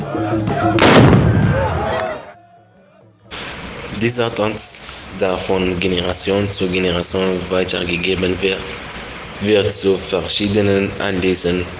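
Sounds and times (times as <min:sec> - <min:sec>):
speech: 0:00.3 - 0:01.1, 0:04.0 - 0:11.7
loud booming black-powder gun blast: 0:00.8 - 0:01.9.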